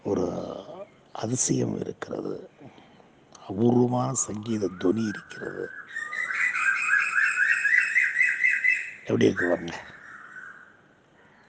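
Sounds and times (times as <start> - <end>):
speech: 1.2 - 2.5, 3.5 - 6.1, 9.1 - 9.9
crow cawing: 4.8 - 11.4.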